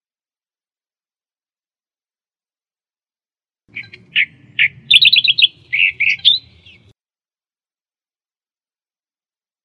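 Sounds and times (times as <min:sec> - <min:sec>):
Australian reed warbler song with buzzy chips: 0:03.7 - 0:06.9.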